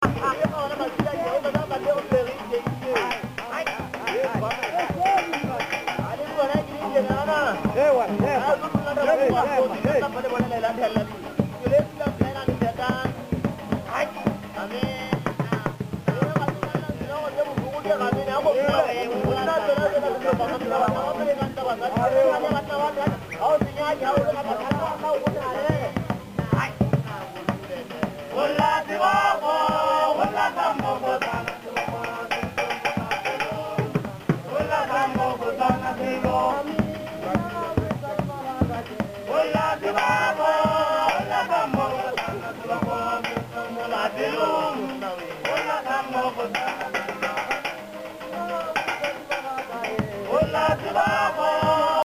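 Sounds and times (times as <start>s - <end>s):
male band playing: 0.0s - 52.0s.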